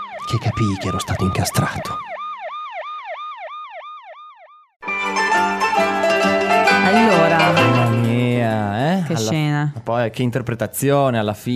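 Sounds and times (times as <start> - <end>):
police siren wailing: 0.0 - 4.8
speech: 0.3 - 2.1, 9.2 - 11.5
music: 4.8 - 8.8.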